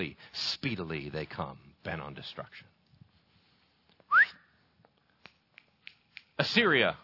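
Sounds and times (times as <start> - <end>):
speech: 0.0 - 2.7, 6.4 - 7.0
person whistling a summoning call: 4.1 - 4.5.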